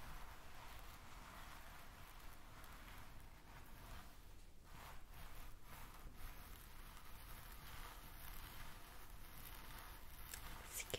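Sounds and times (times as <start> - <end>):
hair brushing and scalp rubbing: 0.0 - 10.9.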